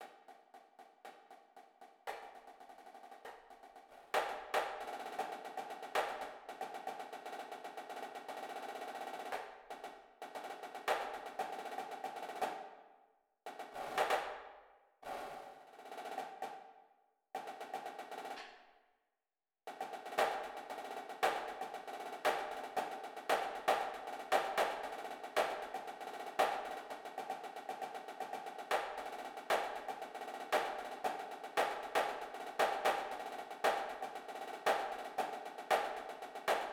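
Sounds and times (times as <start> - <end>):
drumline snare drum: 0.0 - 12.7, 13.5 - 14.4, 15.1 - 16.7, 17.4 - 18.6, 19.7 - 36.7.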